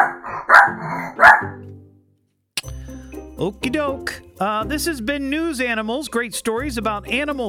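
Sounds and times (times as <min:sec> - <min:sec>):
dog barking sharply: 0:00.0 - 0:01.6
speech: 0:03.4 - 0:07.4.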